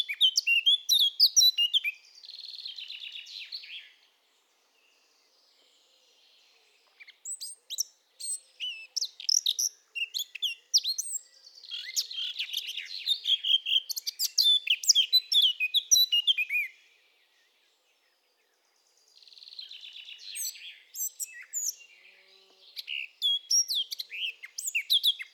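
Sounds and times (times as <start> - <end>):
Eurasian blackcap Sylvia atricapilla singing: 0.0 - 4.0, 6.8 - 16.8, 19.2 - 22.0, 22.6 - 25.3.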